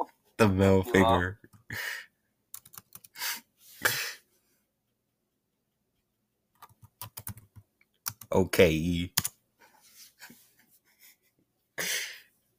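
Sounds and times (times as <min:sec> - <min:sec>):
speech: 0:00.4 - 0:02.0, 0:08.3 - 0:09.2
typing on a computer keyboard: 0:02.5 - 0:03.2, 0:06.6 - 0:08.4, 0:09.1 - 0:09.3.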